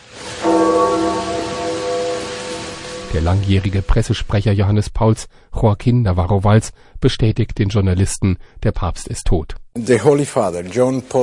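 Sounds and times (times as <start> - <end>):
steady outdoor hiss: 0.0 - 4.5
death-knell church bell tolling over St. Peter's Square at night: 0.1 - 4.4
speech: 3.1 - 11.2.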